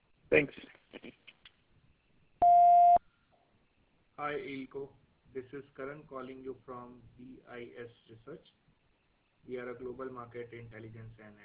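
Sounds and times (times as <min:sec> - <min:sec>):
speech: 0:00.3 - 0:01.2, 0:04.2 - 0:08.6, 0:09.4 - 0:11.4
voicemail beep tone: 0:02.4 - 0:03.0.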